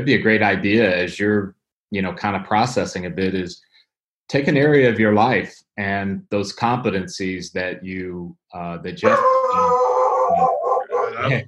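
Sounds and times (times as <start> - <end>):
speech: 0.0 - 3.7, 4.3 - 10.6, 11.2 - 11.4
dog howling: 9.0 - 11.4.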